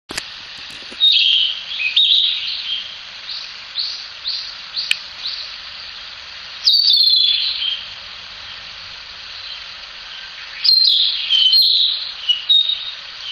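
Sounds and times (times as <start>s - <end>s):
steady high background hiss: 0.1s - 13.3s
Narcissus flycatcher singing short clear whistled phrases: 1.0s - 6.0s, 6.6s - 7.9s, 9.3s - 13.3s.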